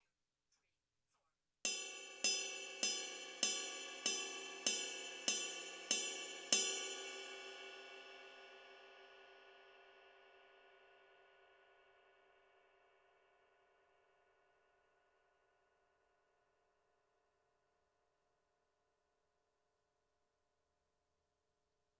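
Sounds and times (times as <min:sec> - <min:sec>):
22 ride cymbal bell: 0:01.7 - 0:08.7.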